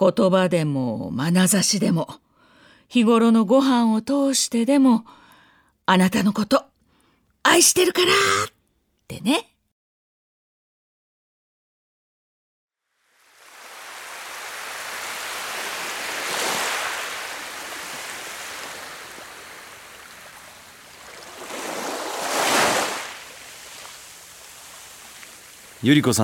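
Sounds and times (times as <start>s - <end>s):
speech: 0.0s - 2.3s, 2.9s - 5.2s, 5.9s - 6.7s, 7.4s - 9.5s, 25.8s - 26.2s
spring ocean waves breaking on the shore: 13.0s - 26.2s.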